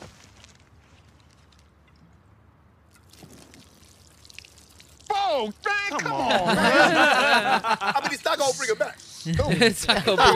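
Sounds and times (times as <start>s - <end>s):
faint splashing trickle: 2.8s - 5.9s
beer pouring in a steady stream: 2.9s - 7.2s
speech: 5.4s - 10.3s
laughter: 5.9s - 10.3s.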